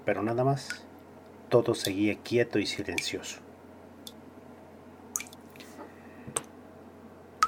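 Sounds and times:
speech: 0:00.1 - 0:00.9, 0:01.5 - 0:03.4
water dripping: 0:05.2 - 0:05.4.

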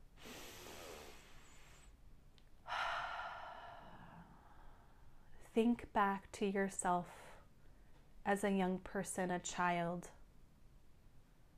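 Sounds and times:
deep breath in and out: 0:00.2 - 0:02.0, 0:02.6 - 0:05.3
speech: 0:05.6 - 0:07.3, 0:08.2 - 0:10.2.

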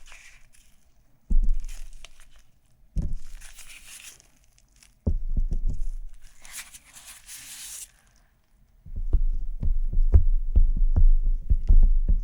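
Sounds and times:
dry crinkly scratching on a surface: 0:00.0 - 0:01.0, 0:01.6 - 0:05.0, 0:06.1 - 0:08.3
dull low thuds: 0:01.3 - 0:01.7, 0:03.0 - 0:03.3, 0:05.0 - 0:06.2, 0:08.9 - 0:12.2.

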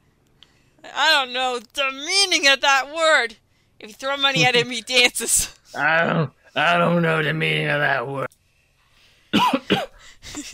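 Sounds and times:
speech: 0:00.8 - 0:08.4
rough gravelly throat-clearing rasp: 0:05.8 - 0:06.4
person coughing during a voice impression: 0:09.4 - 0:10.5.

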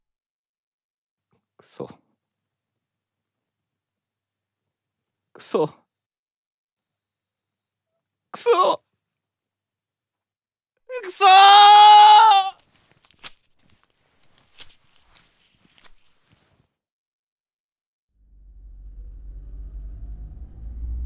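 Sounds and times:
speech: 0:01.6 - 0:02.0, 0:05.4 - 0:05.8, 0:08.4 - 0:08.8, 0:10.9 - 0:12.6
bleat-like cry: 0:11.2 - 0:12.6
low engine rumble of a moving van: 0:18.2 - 0:21.0.

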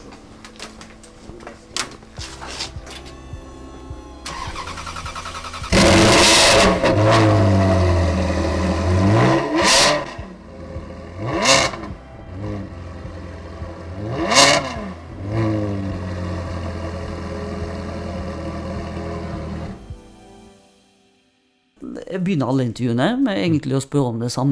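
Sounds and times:
Ferrari 335 GTS engine idling and revving at the rear exhaust pipes: 0:03.5 - 0:19.8
speech: 0:22.2 - 0:24.4.

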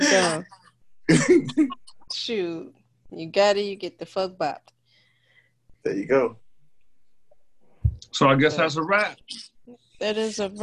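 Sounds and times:
person coughing harshly after smoking weed: 0:00.0 - 0:00.4, 0:01.1 - 0:01.7
laughter: 0:00.0 - 0:00.5, 0:01.1 - 0:01.8, 0:05.9 - 0:06.3, 0:08.2 - 0:09.1
speech: 0:00.1 - 0:04.8, 0:05.8 - 0:06.4, 0:08.1 - 0:10.6.

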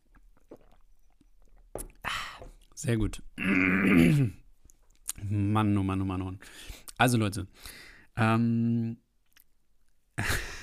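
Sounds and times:
faint mouth and swallowing noises from sipping a drink: 0:00.0 - 0:02.8
speech: 0:02.8 - 0:04.4, 0:05.2 - 0:09.0.

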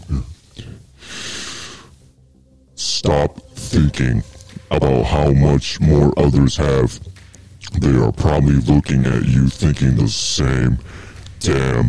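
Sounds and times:
deep forceful inhale through the nose during a breathing exercise: 0:00.5 - 0:02.2
speech: 0:03.0 - 0:07.1, 0:07.8 - 0:11.8.

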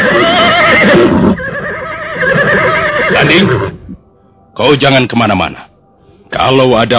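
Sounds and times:
horse neighing loudly: 0:00.0 - 0:03.8
speech: 0:03.3 - 0:03.6, 0:04.6 - 0:05.7, 0:06.3 - 0:06.9.

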